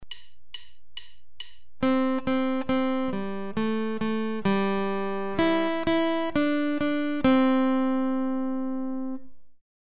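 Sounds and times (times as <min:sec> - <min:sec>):
simple guitar melody: 0:01.8 - 0:09.6.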